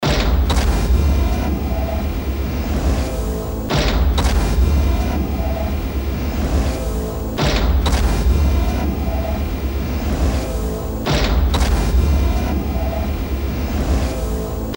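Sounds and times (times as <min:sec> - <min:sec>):
musical effects loop: 0:00.2 - 0:14.7.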